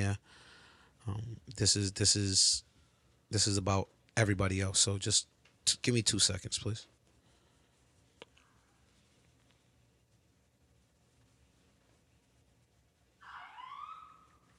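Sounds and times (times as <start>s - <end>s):
quiet hum: 0.0s - 14.5s
speech: 1.0s - 2.7s, 3.3s - 7.0s
ambulance siren passing: 13.3s - 14.4s.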